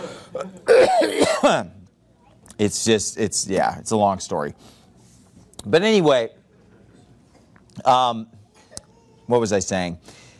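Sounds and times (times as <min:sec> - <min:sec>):
person coughing in harsh hacks: 0:00.4 - 0:01.6
speech: 0:00.4 - 0:01.8, 0:02.6 - 0:04.8, 0:05.6 - 0:06.4, 0:07.8 - 0:08.4, 0:09.3 - 0:10.2.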